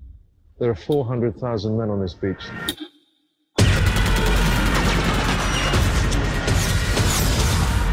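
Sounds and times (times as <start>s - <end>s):
speech: 0.6s - 2.9s
machine gun fire from a fighter plane: 3.6s - 7.8s.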